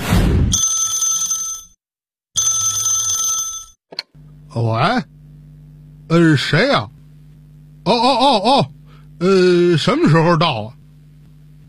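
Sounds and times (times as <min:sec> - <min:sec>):
burst of noise: 0:00.0 - 0:00.6
telephone ringing at home in a residential neighbourhood: 0:00.6 - 0:01.8, 0:02.4 - 0:03.8
speech: 0:04.5 - 0:05.1, 0:06.1 - 0:07.0, 0:07.9 - 0:10.8.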